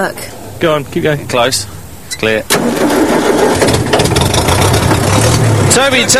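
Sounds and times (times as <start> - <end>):
speech: 0.0 - 3.9, 5.7 - 6.1
heavy old tractor engine starting up: 2.5 - 6.1.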